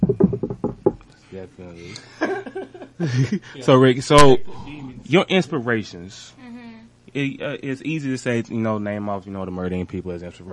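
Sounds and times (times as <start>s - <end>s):
knuckles knocking on a wooden surface: 0.0s - 1.1s
speech: 1.4s - 6.4s, 7.1s - 10.5s
laughter: 1.9s - 3.7s.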